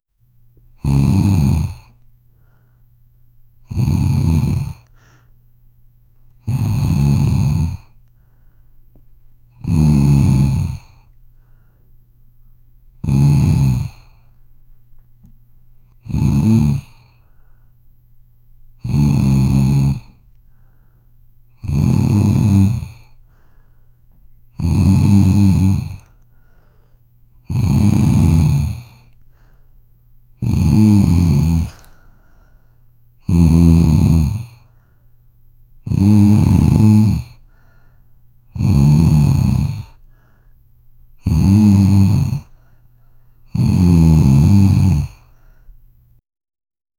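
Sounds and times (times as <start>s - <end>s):
old woman snoring in a bedroom: 0.8s - 2.0s, 3.6s - 4.9s, 6.4s - 8.0s, 9.6s - 11.2s, 13.0s - 14.3s, 16.0s - 17.2s, 18.8s - 20.2s, 21.5s - 23.2s, 24.5s - 26.2s, 27.4s - 29.2s, 30.4s - 32.0s, 33.2s - 34.8s, 35.8s - 37.8s, 38.5s - 40.1s, 41.2s - 42.6s, 43.5s - 45.4s.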